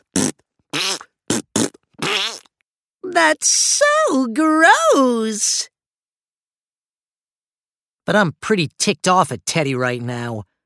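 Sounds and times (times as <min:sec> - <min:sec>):
wet armpit farts made by a boy: 0:00.0 - 0:02.5
speech: 0:03.2 - 0:05.7, 0:08.1 - 0:10.5.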